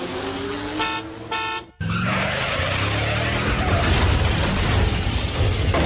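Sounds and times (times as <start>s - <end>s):
dense continuous roar of engines and road noise: 0.0s - 5.7s
car horns blaring in busy chaotic traffic: 0.6s - 1.9s.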